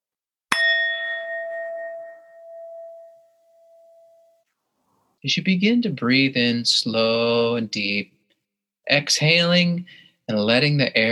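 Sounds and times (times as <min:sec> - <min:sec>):
meditation bell ringing at a body scan meditation: 0:00.5 - 0:04.4
speech: 0:05.2 - 0:08.2, 0:08.9 - 0:11.1.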